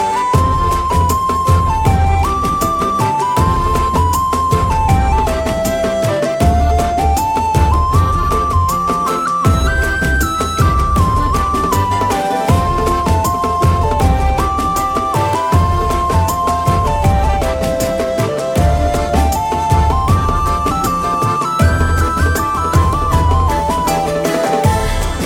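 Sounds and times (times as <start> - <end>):
flute ringtone for mobile phone: 0.0 - 25.2.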